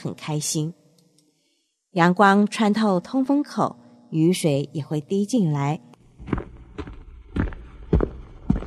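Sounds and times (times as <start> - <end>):
speech: 0.0 - 0.8, 2.0 - 5.9
footsteps of a man walking at a slow pace: 6.2 - 8.6.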